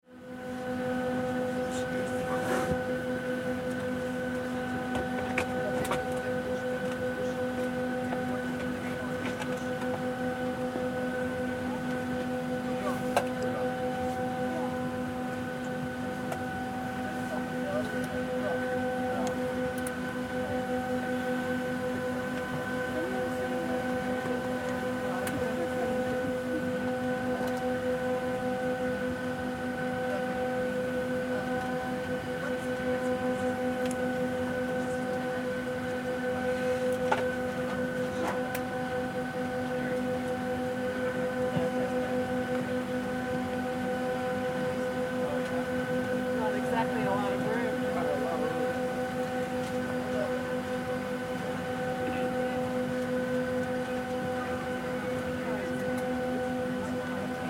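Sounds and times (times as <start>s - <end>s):
commercial airline airplane cabin during boarding: 0.2s - 57.4s.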